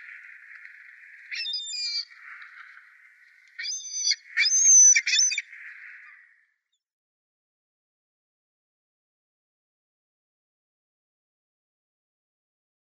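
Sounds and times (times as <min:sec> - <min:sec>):
constant hissing background: 0:00.0 - 0:04.8
Ring-billed gull calls: 0:01.2 - 0:02.8, 0:03.6 - 0:06.3.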